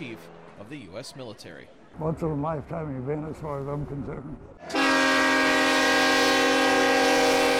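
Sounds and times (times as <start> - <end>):
speech: 0.0 - 4.8
funeral train horn blast in wet, soggy weather: 4.6 - 7.5.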